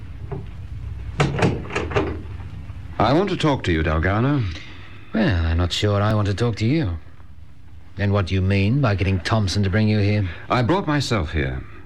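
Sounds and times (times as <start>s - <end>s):
faint low hum: 0.0s - 11.8s
door pushed shut with wooden thuds and rattling clicks: 1.2s - 2.2s
speech: 3.0s - 7.1s, 8.0s - 11.8s.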